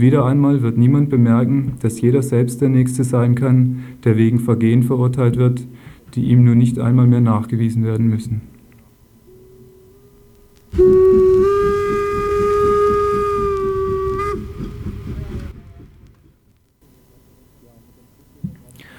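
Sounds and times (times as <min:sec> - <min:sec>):
speech: 0:00.0 - 0:08.5, 0:10.7 - 0:11.7
loud steam train whistle: 0:10.7 - 0:16.0
steam locomotive chugging: 0:10.7 - 0:16.5.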